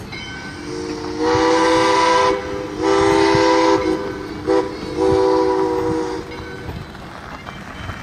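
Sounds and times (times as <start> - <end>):
train whistle: 0.5 - 6.4.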